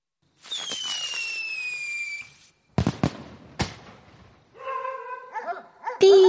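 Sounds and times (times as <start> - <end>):
firework bangs and crackles: 0.3 - 4.5
whistling firework in a soil-filled flowerpot shrieking: 0.4 - 2.7
neighbourhood dogs yelping, whining and barking: 4.6 - 6.2.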